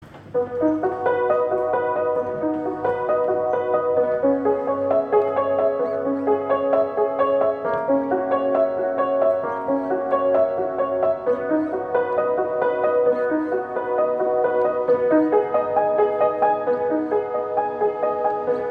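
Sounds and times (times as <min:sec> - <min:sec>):
out-of-tune piano playing: 0:00.1 - 0:18.6.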